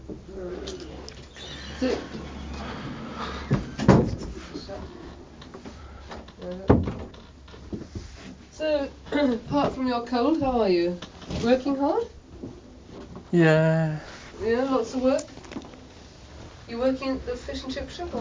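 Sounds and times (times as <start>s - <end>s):
low hum: 0.0s - 18.2s
speech: 1.8s - 2.2s, 8.7s - 12.1s, 13.3s - 15.3s, 16.7s - 18.2s
wooden cupboard door being opened and shut: 3.4s - 4.2s.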